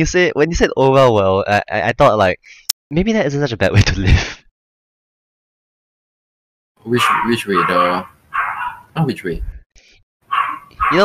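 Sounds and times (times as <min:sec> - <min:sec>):
speech: 0:00.0 - 0:04.4, 0:06.8 - 0:08.2, 0:09.0 - 0:09.5, 0:10.3 - 0:11.0
dog barking: 0:06.9 - 0:09.0, 0:10.3 - 0:11.0.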